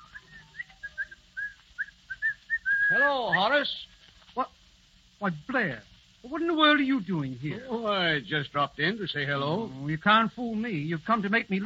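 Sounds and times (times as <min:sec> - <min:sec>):
man coming down the stairs whistling a bright bouncy tune: 0:00.0 - 0:03.5
speech: 0:02.9 - 0:04.5, 0:05.2 - 0:11.6.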